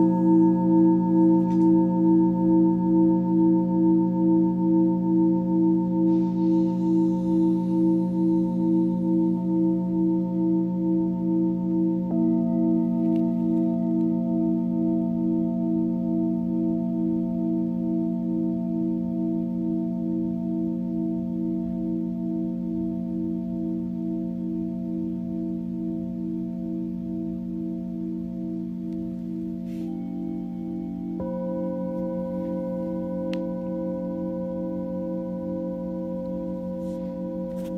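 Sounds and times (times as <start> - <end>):
singing bowl ringing in a long steady drone: 0.0 - 37.7.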